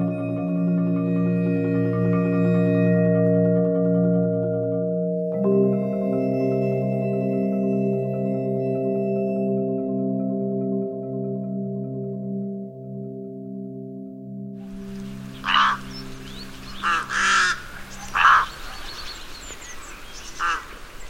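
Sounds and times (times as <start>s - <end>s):
low musical drone: 0.0s - 21.0s
rooks cawing and chattering: 14.7s - 21.0s.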